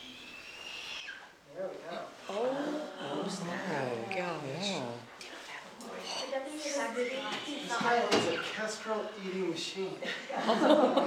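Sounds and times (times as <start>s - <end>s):
eagle-owl squeaking: 0.0s - 1.4s, 6.0s - 8.6s
general noise: 0.0s - 11.0s
speech: 7.0s - 11.0s
laughter: 10.0s - 11.0s.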